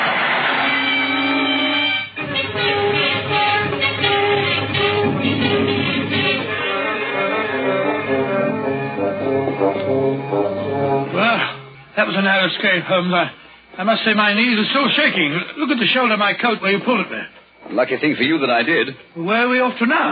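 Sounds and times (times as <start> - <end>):
train rushing past: 0.1 - 12.3
speech: 12.1 - 20.0.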